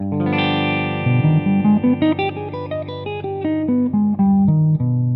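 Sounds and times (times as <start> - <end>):
musical scales: 0.2 - 5.0.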